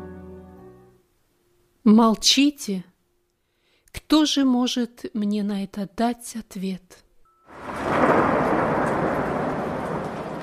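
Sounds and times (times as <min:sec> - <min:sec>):
speech: 0:01.8 - 0:02.9, 0:04.0 - 0:07.0
deep rolling thunder: 0:07.5 - 0:10.4.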